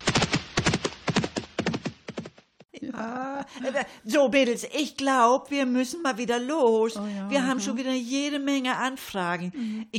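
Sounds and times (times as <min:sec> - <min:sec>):
horse hooves clip-clopping: 0:00.0 - 0:02.6
speech: 0:03.0 - 0:09.9.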